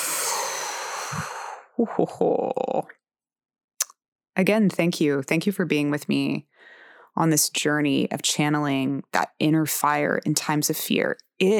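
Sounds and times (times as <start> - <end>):
slow deep breath during a guided breathing exercise: 0.0 - 1.8, 6.5 - 7.1
soft breathy voiced sounds: 0.0 - 2.2
speech: 1.1 - 3.0, 4.4 - 11.5.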